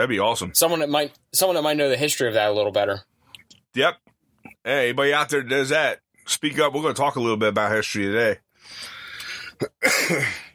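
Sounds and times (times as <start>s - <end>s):
speech: 0.0s - 3.1s, 3.7s - 9.0s, 9.6s - 10.4s
person coughing: 9.4s - 10.5s
person clearing throat: 9.5s - 10.5s.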